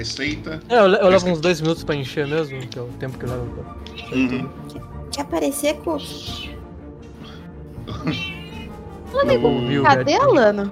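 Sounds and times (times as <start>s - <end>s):
speech: 0.0s - 6.5s, 8.0s - 8.3s, 9.1s - 10.6s
laughter: 7.9s - 8.2s
cat meowing loudly: 8.0s - 10.0s.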